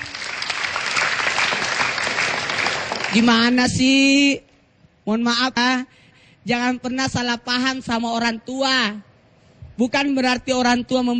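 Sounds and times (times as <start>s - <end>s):
audience applause at a religious lecture for children: 0.0s - 3.3s
speech: 3.1s - 9.1s, 9.8s - 11.1s.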